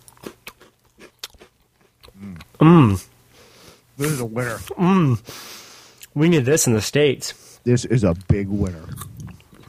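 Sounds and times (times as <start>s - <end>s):
biting and chewing a creamsicle-like orange snack with wafery center: 0.0s - 3.0s, 8.1s - 9.6s
speech: 2.6s - 3.1s, 4.0s - 5.5s, 6.2s - 9.0s.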